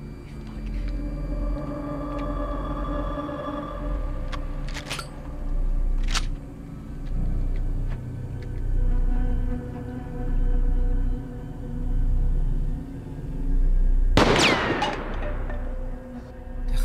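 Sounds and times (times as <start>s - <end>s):
steady low rumble of engines and machinery: 0.0s - 16.8s
sharp burst of loud gunfire: 14.2s - 15.6s.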